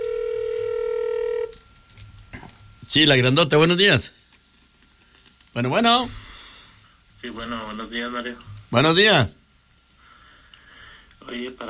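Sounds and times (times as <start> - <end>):
telephone line tone marking an incoming call: 0.0 - 1.6
speech: 2.9 - 4.2, 5.6 - 6.2, 7.2 - 9.4, 11.2 - 11.6.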